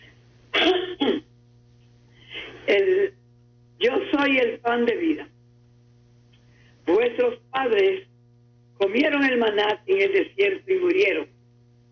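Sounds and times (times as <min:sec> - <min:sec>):
throat clearing from a person with a throat problem: 0:00.6 - 0:01.3
speech: 0:02.7 - 0:03.2, 0:03.8 - 0:05.3, 0:06.9 - 0:08.1, 0:08.8 - 0:11.3.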